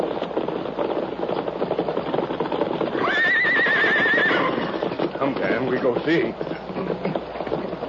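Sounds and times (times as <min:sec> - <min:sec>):
riderless horse hoofbeats clopping: 0:00.0 - 0:07.8
riderless horse whinnying: 0:02.9 - 0:05.3
speech: 0:05.8 - 0:06.5.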